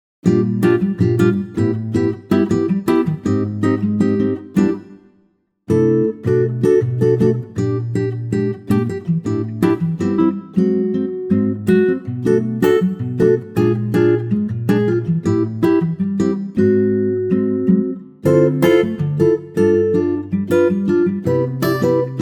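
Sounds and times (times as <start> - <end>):
mellow acoustic guitar arrangement in G: 0.2 - 22.2.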